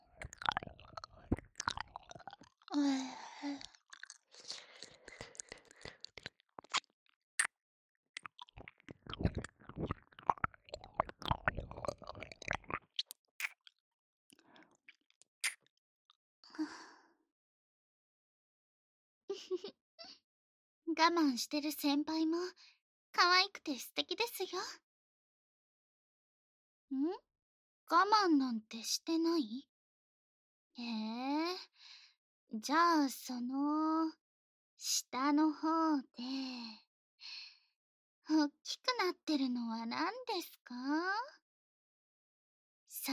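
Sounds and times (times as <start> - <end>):
wet licking and smacking mouth sounds: 0.2 - 2.5, 3.6 - 6.9, 8.2 - 13.6
speech: 21.1 - 24.9, 26.9 - 27.3, 27.9 - 29.7, 30.8 - 34.2, 34.8 - 37.4, 38.3 - 41.4.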